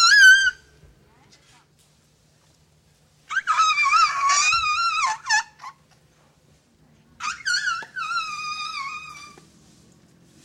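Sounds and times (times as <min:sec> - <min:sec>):
Asian elephant high wavering squeal in Thailand: 0:00.0 - 0:00.7, 0:03.3 - 0:05.8, 0:07.2 - 0:09.4.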